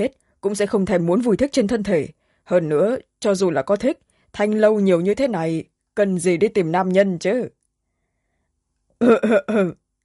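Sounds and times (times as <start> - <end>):
speech: 0.0 - 7.6, 9.0 - 9.8
young man dry coughing after nearly choking: 9.0 - 9.8.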